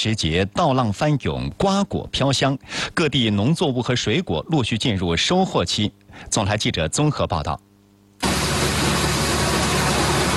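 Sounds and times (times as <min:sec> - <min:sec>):
speech: 0:00.0 - 0:07.7
combine harvester cutting, threshing and loading grain in a ratoon rice field in Langxi County, Anhui: 0:08.2 - 0:10.3.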